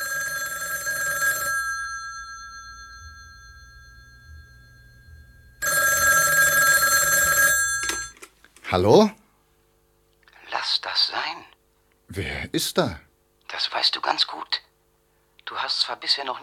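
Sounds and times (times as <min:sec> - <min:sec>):
telephone bell ringing: 0:00.0 - 0:08.2
faint low hum: 0:01.6 - 0:16.4
speech: 0:08.7 - 0:09.2, 0:12.2 - 0:13.0, 0:15.9 - 0:16.4.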